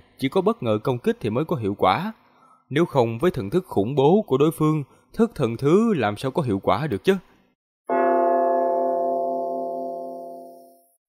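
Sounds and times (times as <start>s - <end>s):
speech: 0.2s - 7.3s
bell-like clang of a collision against a giant mountain: 7.9s - 10.9s.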